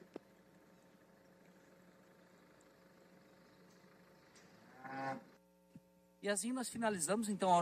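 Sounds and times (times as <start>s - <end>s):
dairy cows mooing while feeding: 4.6s - 5.3s
speech: 6.2s - 7.6s.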